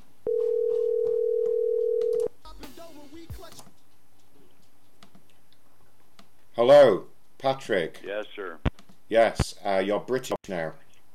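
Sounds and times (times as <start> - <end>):
telephone ringing tone: 0.3 - 2.3
speech: 6.6 - 10.8.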